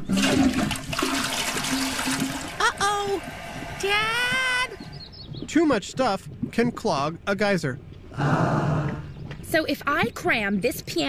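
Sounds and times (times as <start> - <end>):
toilet flushing: 0.0 - 4.9
speech: 3.0 - 4.5, 5.5 - 11.0.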